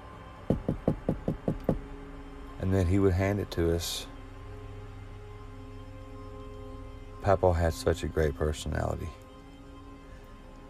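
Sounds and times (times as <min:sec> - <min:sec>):
knocking on a hard surface: 0:00.5 - 0:01.9
speech: 0:02.6 - 0:04.1, 0:07.2 - 0:09.2.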